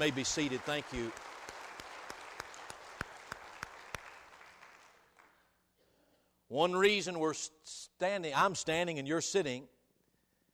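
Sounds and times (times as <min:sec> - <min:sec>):
speech: 0:00.0 - 0:01.3, 0:06.6 - 0:09.8
sharp evenly spaced claps: 0:00.0 - 0:05.4
audience applauding: 0:00.0 - 0:05.5.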